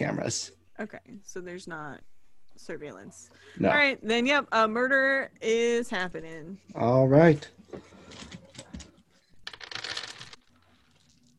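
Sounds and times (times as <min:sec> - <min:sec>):
speech: 0:00.0 - 0:08.3
dice rolling across a hard tabletop: 0:08.7 - 0:11.1.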